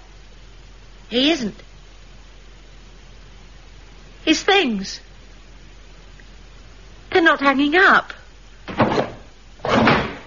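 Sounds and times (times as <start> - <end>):
speech: 1.1 - 1.7, 4.3 - 5.1, 7.2 - 8.2
empty drawers sliding open: 8.7 - 10.2.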